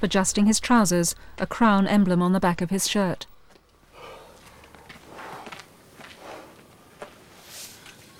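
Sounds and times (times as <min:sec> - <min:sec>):
speech: 0:00.0 - 0:03.3
footsteps of a woman walking out of a glasshouse: 0:04.4 - 0:08.1
steady hiss: 0:05.0 - 0:08.1.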